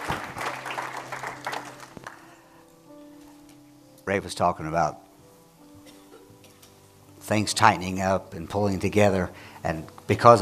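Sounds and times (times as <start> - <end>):
audience clapping their hands in applause: 0.0 - 2.4
speech: 4.1 - 5.0, 7.3 - 10.4.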